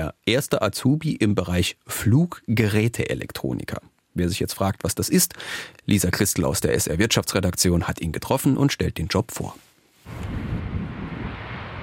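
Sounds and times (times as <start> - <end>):
speech: 0.3 - 10.5
airplane taking off on a windy, wet airport apron: 10.1 - 11.8
gusty wind noise on a windy, wet airport apron: 10.1 - 11.8.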